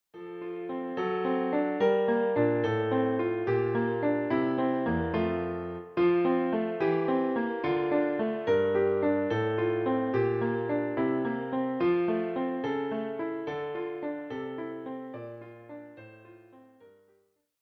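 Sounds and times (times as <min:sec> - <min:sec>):
piano playing a German evening song: 0:00.1 - 0:17.2.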